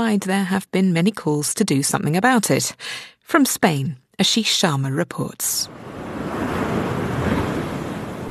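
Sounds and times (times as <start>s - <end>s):
speech: 0.0s - 6.6s
gusty wind rushing across the microphone: 5.7s - 8.2s
ocean waves crashing onto a sandy beach: 5.7s - 8.2s.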